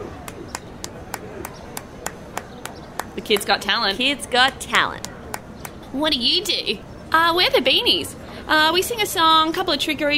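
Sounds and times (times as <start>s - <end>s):
boy clapping hands between his legs as a talent show trick: 0.2s - 3.7s, 4.4s - 5.8s
speech: 3.2s - 5.1s, 5.9s - 10.1s.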